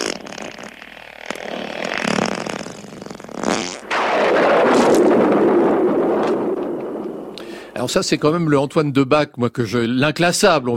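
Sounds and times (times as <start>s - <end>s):
short raspy fart bursts: 0.0s - 3.9s
long loud rumbling sputtering fart: 0.0s - 7.4s
speech: 7.8s - 10.7s.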